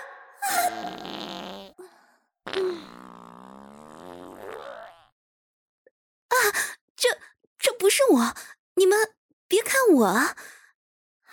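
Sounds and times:
loud farts from a person with an aching stomach: 0:00.7 - 0:01.8, 0:02.5 - 0:05.2
speech: 0:08.1 - 0:09.1, 0:10.0 - 0:10.4.

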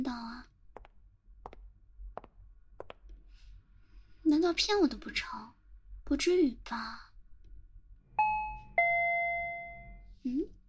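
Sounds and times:
speech: 0:04.3 - 0:07.1
doorbell two-note ding-dong chime: 0:08.2 - 0:10.0.

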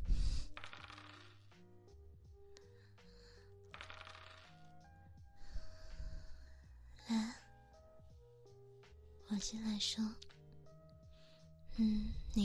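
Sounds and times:
soft music: 0:00.0 - 0:12.4
dice rattling in a cup during a drinking game: 0:00.1 - 0:01.4, 0:03.7 - 0:04.7
speech: 0:09.3 - 0:10.2, 0:11.8 - 0:12.4.

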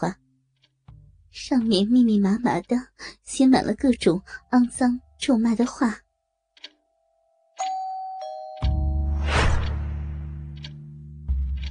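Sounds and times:
speech: 0:00.0 - 0:00.2, 0:01.4 - 0:06.0
two-tone doorbell chime ringing ding-dong: 0:07.6 - 0:09.2
brief crash: 0:09.1 - 0:10.4.

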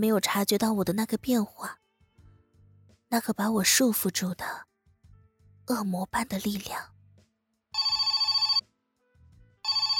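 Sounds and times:
speech: 0:00.0 - 0:01.8, 0:03.1 - 0:04.7, 0:05.7 - 0:06.9
telephone ringing with trilling electronic bell: 0:07.8 - 0:08.6, 0:09.6 - 0:09.9.

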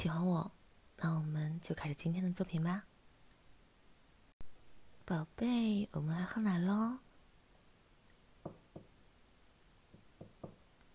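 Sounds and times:
speech: 0:00.0 - 0:02.9, 0:05.1 - 0:07.1
sharp knocks on a door: 0:08.4 - 0:08.9, 0:09.9 - 0:10.6.

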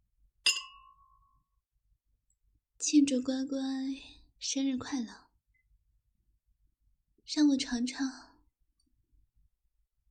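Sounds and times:
glasses clinking in a birthday toast: 0:00.4 - 0:01.2
speech: 0:02.8 - 0:05.2, 0:07.3 - 0:08.3.

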